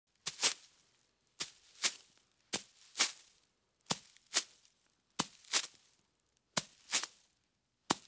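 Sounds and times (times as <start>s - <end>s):
kicking through grass: 0.2s - 0.7s, 1.4s - 2.0s, 2.6s - 3.3s, 5.2s - 5.7s, 6.6s - 7.2s.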